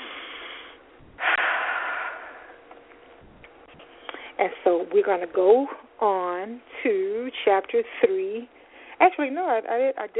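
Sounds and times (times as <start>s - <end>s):
person breathing deeply: 0.0s - 2.6s
speech: 4.4s - 10.1s.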